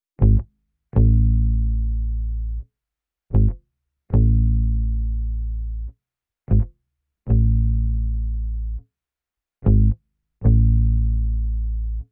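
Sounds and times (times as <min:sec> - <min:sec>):
lofi bass melody loop in E major: 0:00.2 - 0:02.6, 0:03.4 - 0:05.9, 0:07.3 - 0:08.8, 0:09.7 - 0:12.0.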